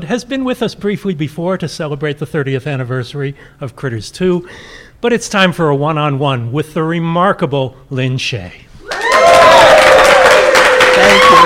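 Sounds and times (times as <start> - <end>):
speech: 0.0 - 8.6, 11.0 - 11.4
live audience in Long Beach California cheering and applauding: 8.8 - 11.4.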